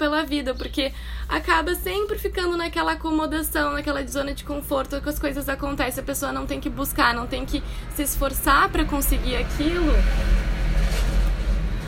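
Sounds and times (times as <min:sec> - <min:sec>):
speech: 0:00.2 - 0:10.5
trucks and buses passing on a city street: 0:02.6 - 0:11.8.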